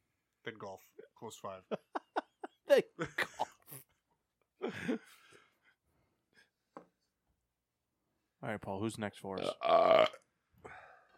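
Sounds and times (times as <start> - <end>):
speech: 0.4 - 2.0, 2.7 - 3.4, 8.4 - 10.2
burp: 9.4 - 10.3.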